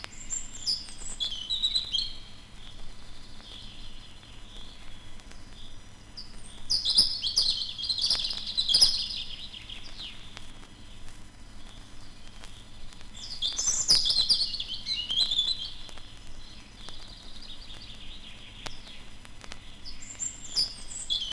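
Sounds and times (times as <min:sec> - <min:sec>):
European robin singing from a small spruce: 0:00.0 - 0:11.0, 0:11.6 - 0:21.3.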